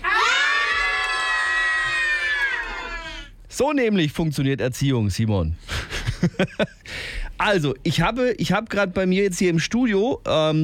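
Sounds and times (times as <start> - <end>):
group of children shouting loudly in a studio: 0.0 - 3.2
speech: 3.6 - 10.6.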